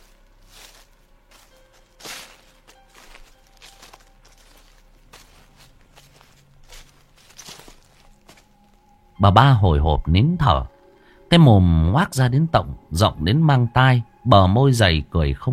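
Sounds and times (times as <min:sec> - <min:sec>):
soft footsteps behind a house: 0:00.0 - 0:09.0
speech: 0:09.2 - 0:15.5.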